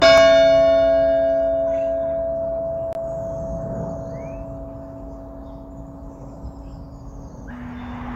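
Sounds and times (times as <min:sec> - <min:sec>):
bells ringing: 0:00.0 - 0:08.1.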